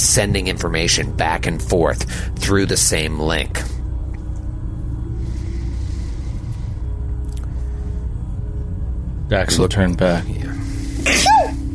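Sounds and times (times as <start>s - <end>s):
low hum: 0.0s - 11.7s
speech: 0.2s - 3.7s, 9.3s - 10.5s
person sneezing: 11.0s - 11.5s.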